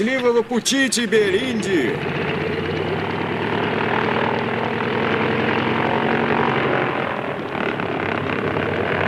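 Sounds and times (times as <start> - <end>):
speech: 0.0 - 2.4
overloaded propeller airplane engine roaring while taxiing down a waterlogged runway: 0.0 - 9.0.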